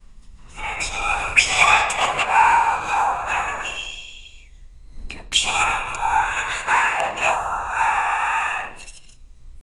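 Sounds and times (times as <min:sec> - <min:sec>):
evil creature whispering: 0:00.5 - 0:09.0.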